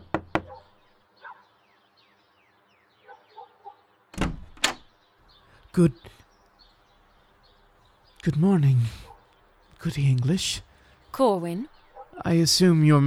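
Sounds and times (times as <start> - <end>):
knocking on a door: 0.0 - 0.6
speech: 5.8 - 6.2, 8.2 - 9.1, 9.8 - 13.0.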